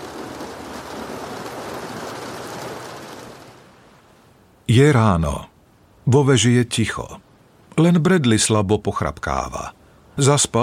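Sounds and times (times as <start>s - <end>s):
rain drumming on polished window glass: 0.0s - 4.3s
speech: 4.7s - 5.5s, 6.1s - 7.2s, 7.8s - 10.6s.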